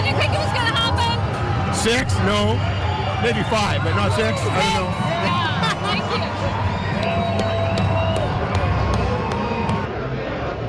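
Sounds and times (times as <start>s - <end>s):
stadium crowd in Surrey cheering after a goal: 0.0s - 10.6s
speech: 1.8s - 7.2s
sharp claps or thumps: 7.0s - 9.9s.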